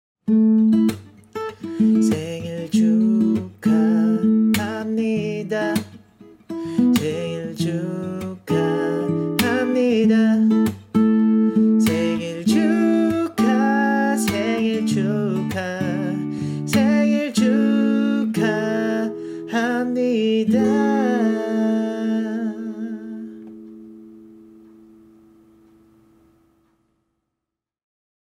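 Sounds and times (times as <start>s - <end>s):
person singing a song in Korean: 1.6s - 6.0s, 6.6s - 23.8s.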